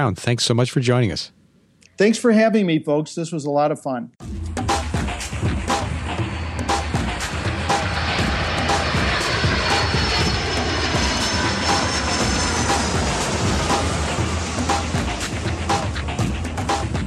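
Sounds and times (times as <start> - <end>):
speech: 0.0 - 1.4, 2.0 - 4.3
small airplane engine droning in flight: 4.3 - 17.0.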